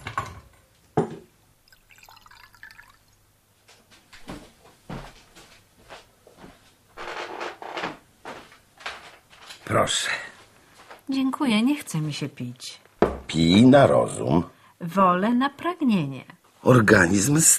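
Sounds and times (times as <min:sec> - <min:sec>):
clinks and knocks from a cupboard being opened and closed: 0:00.0 - 0:01.3, 0:13.0 - 0:13.3
water poured into a glass: 0:01.6 - 0:03.2
speech: 0:09.7 - 0:10.2, 0:11.1 - 0:17.5.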